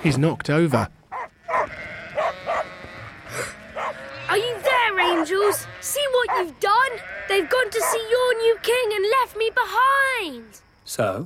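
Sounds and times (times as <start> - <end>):
speech: 0.0 - 1.0, 5.1 - 11.2
sheep bleating while running about: 1.1 - 9.1.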